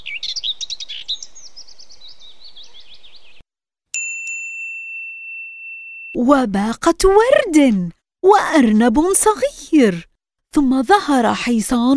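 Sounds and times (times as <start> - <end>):
flock of sparrows chirping: 0.0 - 3.4
bright ringing bell-like dings: 3.9 - 6.2
speech: 6.2 - 11.9.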